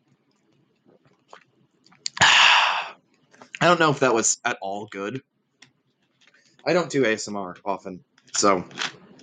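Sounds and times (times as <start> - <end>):
mouth clicks while drinking root beer: 1.3 - 2.9
speech: 3.6 - 5.3, 6.6 - 9.0.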